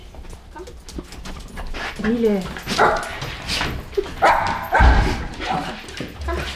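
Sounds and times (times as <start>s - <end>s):
speech: 2.0s - 3.2s
wirehaired pointing dog and Jack Russell Terrier barking: 2.6s - 6.5s.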